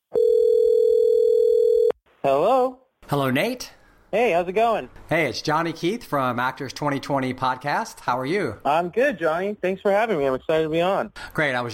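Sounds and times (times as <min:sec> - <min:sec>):
telephone dial tone: 0:00.1 - 0:02.0
speech: 0:02.2 - 0:11.7.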